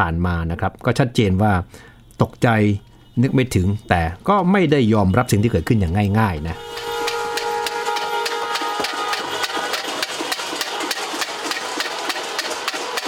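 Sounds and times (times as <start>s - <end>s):
speech: 0.0s - 6.9s
protesters banging pots and wooden clappers: 5.1s - 13.0s.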